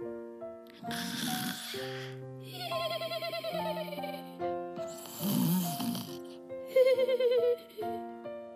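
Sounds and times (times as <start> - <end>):
gentle tonal musical background: 0.0 - 8.5
soft snoring: 0.8 - 2.2, 4.9 - 6.4.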